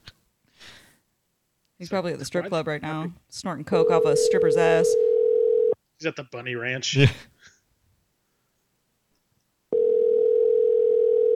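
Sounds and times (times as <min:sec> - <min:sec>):
speech: 0:01.8 - 0:05.1, 0:06.0 - 0:07.3
steady electronic phone call ringing tone: 0:03.7 - 0:05.8, 0:09.7 - 0:11.3.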